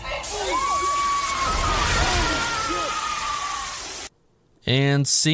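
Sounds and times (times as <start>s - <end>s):
person screaming in terror with high-pitched wails: 0.2s - 4.0s
speech: 5.0s - 5.3s.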